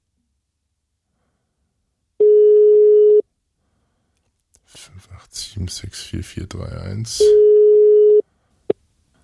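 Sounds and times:
telephone ringback tone of a Skype call to a German mobile number: 2.2s - 3.2s, 7.2s - 8.2s
speech: 4.9s - 7.4s.

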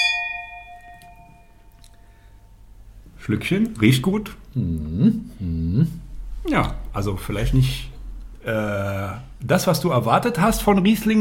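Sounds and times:
wine glasses clinking in a toast with Riesling: 0.0s - 1.8s
speech: 3.2s - 11.1s.

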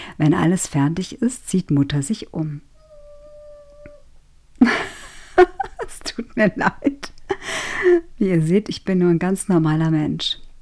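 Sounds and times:
low hum: 0.0s - 10.6s
speech: 0.2s - 2.7s, 5.4s - 5.6s, 6.4s - 7.1s, 7.8s - 10.4s
dog howling and whimpering: 2.7s - 4.0s
laughter: 4.6s - 6.2s.

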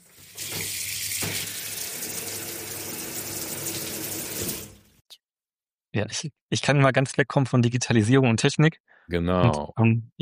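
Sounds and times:
water running from a shower: 0.0s - 5.0s
speech: 6.0s - 10.2s.

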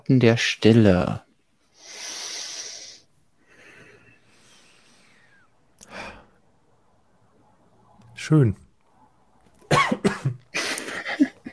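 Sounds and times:
speech: 0.1s - 1.2s, 8.2s - 8.6s
person coughing harshly: 9.7s - 11.3s.

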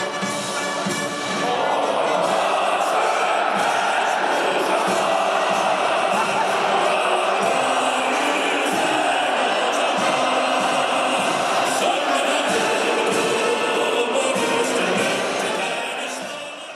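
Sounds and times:
huge stadium crowd singing a national anthem: 0.2s - 16.7s
laughter: 0.8s - 16.7s.

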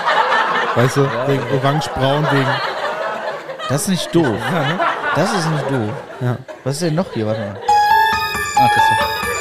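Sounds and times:
laughter: 0.0s - 9.3s
speech: 0.8s - 2.7s, 3.7s - 7.7s, 8.6s - 9.2s
electronic telephone ring: 7.7s - 9.3s.

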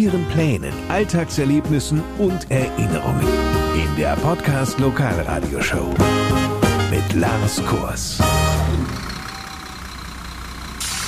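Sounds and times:
speech: 0.0s - 6.3s, 6.9s - 9.0s
bus engine rumbling: 0.0s - 11.0s
road noise: 0.6s - 11.0s
brighter hiss: 10.8s - 11.0s.

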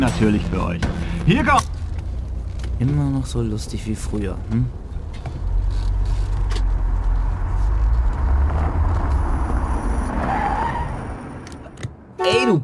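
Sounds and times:
speech: 0.0s - 1.8s, 2.8s - 4.8s
low car engine rumble: 0.0s - 11.8s
car tires skidding at a parking space: 4.7s - 11.8s
faint car tire squeal: 7.4s - 11.7s.

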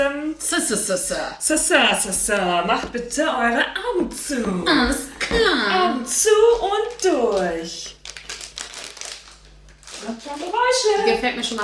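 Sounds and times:
speech: 0.0s - 8.0s, 10.0s - 11.6s
stiff plastic candy bag crinkling as it is opened: 6.8s - 11.6s.

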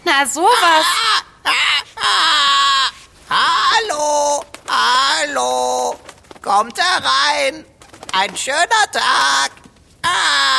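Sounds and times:
speech: 0.0s - 2.5s, 6.5s - 10.5s
grey parrot squawking: 0.4s - 5.4s.

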